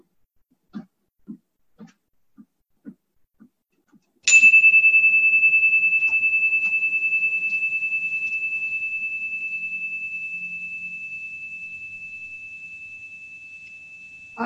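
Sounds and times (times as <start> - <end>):
prairie chime ringing: 4.3 - 14.4.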